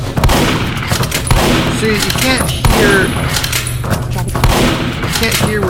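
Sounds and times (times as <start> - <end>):
video game shotgun blasts: 0.1 - 3.5, 4.4 - 5.5.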